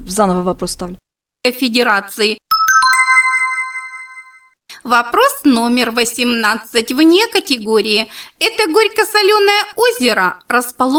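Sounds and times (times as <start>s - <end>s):
speech: 0.0s - 2.4s, 4.8s - 10.9s
smartphone electronic activation tone: 2.5s - 4.5s.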